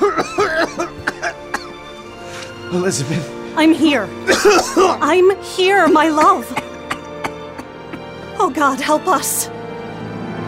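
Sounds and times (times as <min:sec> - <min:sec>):
man coughing up blood: 0:00.0 - 0:01.8, 0:04.3 - 0:05.0
speech: 0:02.7 - 0:06.6, 0:08.4 - 0:09.6.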